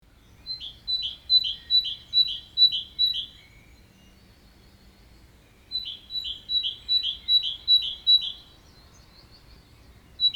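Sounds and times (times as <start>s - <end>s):
great tit singing morning call: 0.2s - 10.3s.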